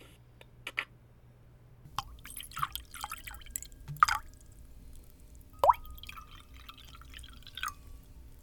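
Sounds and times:
drinks poured into glasses: 1.9s - 8.4s.

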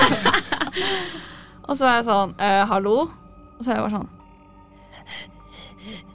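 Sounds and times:
laughter: 0.0s - 0.9s
person imitating creepy heavy breathing of a phone caller: 0.6s - 1.6s, 4.7s - 6.1s
speech: 0.9s - 4.2s, 5.1s - 6.1s.

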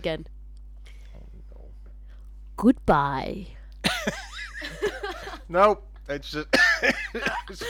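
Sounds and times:
speech: 0.0s - 0.4s, 2.6s - 4.8s, 5.5s - 7.6s
man coughing into the microphone: 6.5s - 7.6s.

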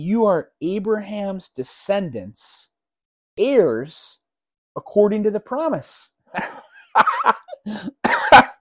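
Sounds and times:
speech: 0.0s - 2.7s, 3.4s - 4.2s, 4.8s - 8.5s
person coughing harshly: 6.4s - 8.5s.

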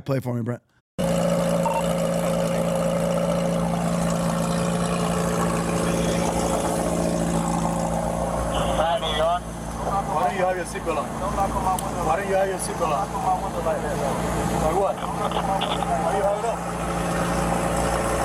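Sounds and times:
speech: 0.0s - 0.8s, 10.3s - 17.4s
car engine idling at a traffic stop: 1.0s - 18.2s
voices: 8.6s - 16.6s.

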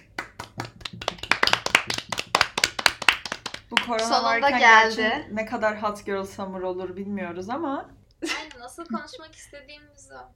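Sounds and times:
small group hand clapping: 0.0s - 4.4s
speech: 3.9s - 8.0s, 8.7s - 10.3s.

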